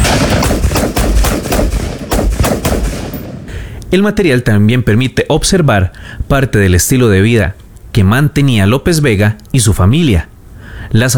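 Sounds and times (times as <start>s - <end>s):
gunfire from heavy-caliber weapons at shooting practice: 0.0s - 4.2s
speech: 3.9s - 11.1s.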